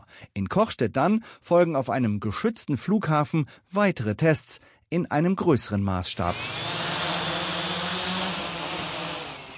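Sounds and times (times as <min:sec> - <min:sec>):
speech: 0:00.2 - 0:07.0
small drone rotors hovering in a test cage: 0:06.3 - 0:09.5.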